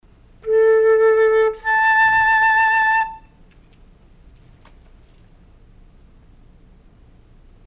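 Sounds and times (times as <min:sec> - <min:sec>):
flute playing an octave: 0:00.4 - 0:03.4.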